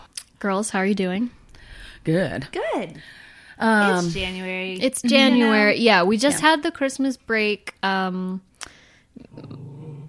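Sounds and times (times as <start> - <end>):
speech: 0.4 - 8.5
dog growling: 9.2 - 10.0.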